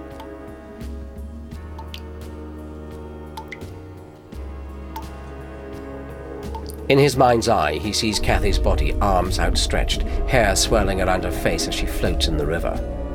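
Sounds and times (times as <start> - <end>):
tap dripping in a flat: 0.1 - 0.4, 1.6 - 2.3, 3.3 - 3.8, 4.9 - 5.3, 6.4 - 6.8
speech: 6.9 - 13.0
steady low hum: 7.8 - 13.1.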